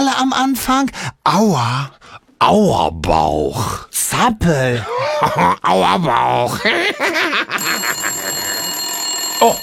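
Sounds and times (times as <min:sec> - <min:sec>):
speech: 0:00.2 - 0:08.1, 0:09.4 - 0:09.6
telephone ringing with a bright rattling bell: 0:07.5 - 0:09.6.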